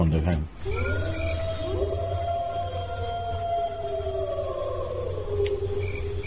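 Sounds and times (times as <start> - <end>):
low steady hum: 0.0 - 6.2
speech: 0.1 - 1.2
wolf howl sound effect played from a button: 0.6 - 6.2.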